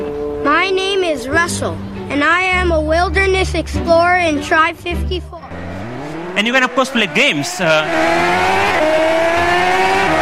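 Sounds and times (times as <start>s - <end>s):
speech: 0.7s - 5.4s, 6.4s - 9.0s
car racing video game engine drone with harmonic tones: 5.5s - 10.2s.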